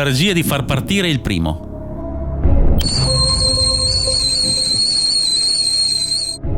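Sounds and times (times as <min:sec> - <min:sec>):
speech: 0:00.0 - 0:01.7, 0:02.8 - 0:03.1
pressure cooker whistling: 0:02.8 - 0:06.4.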